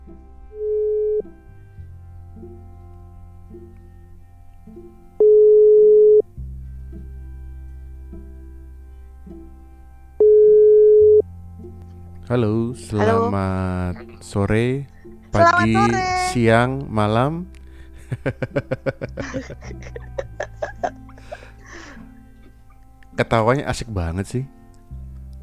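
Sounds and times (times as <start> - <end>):
low hum of music: 0.0 - 25.4
outgoing phone call ringback tone: 0.5 - 1.3, 5.2 - 6.3, 10.2 - 11.3
speech: 12.3 - 17.6, 18.2 - 20.1, 23.2 - 24.6
laughter: 17.9 - 22.6.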